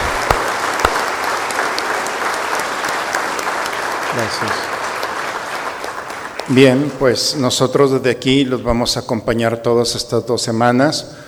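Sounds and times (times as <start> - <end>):
sharp hand claps: 0.0 - 7.0
audience applauding: 0.0 - 7.4
speech: 4.2 - 4.8, 6.5 - 11.2.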